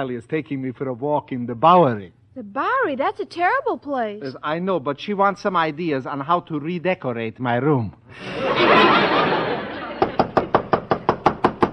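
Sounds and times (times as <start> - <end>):
speech: 0.0 - 9.3
laughter: 8.1 - 10.5
woman knocking on an apartment door: 10.0 - 11.7.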